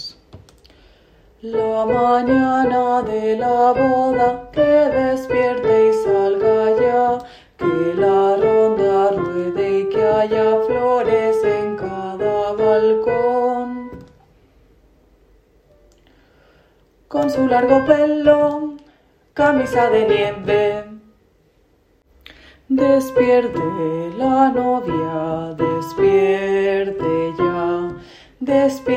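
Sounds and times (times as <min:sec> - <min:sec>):
tenor singing: 0:01.4 - 0:14.0, 0:17.1 - 0:18.8, 0:19.4 - 0:21.1, 0:22.7 - 0:28.9.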